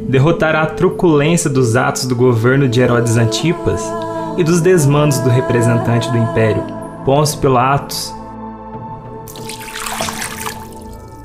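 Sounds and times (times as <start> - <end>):
speech: 0.0 - 8.2
low sustained musical drone: 0.0 - 9.3
water pouring and splashing in a baptism: 9.3 - 11.2.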